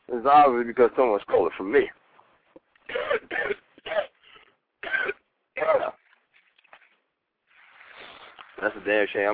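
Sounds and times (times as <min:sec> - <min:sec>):
speech: 0:00.2 - 0:02.0, 0:03.1 - 0:03.6, 0:08.6 - 0:09.3
person coughing: 0:02.9 - 0:04.2, 0:04.8 - 0:05.2.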